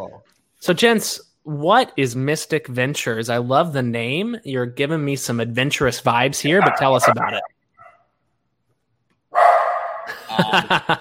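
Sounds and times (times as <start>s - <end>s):
speech: 0.0s - 7.5s, 10.5s - 10.9s
guard dog barking: 6.5s - 8.1s, 9.4s - 10.1s
laughter: 10.1s - 10.9s.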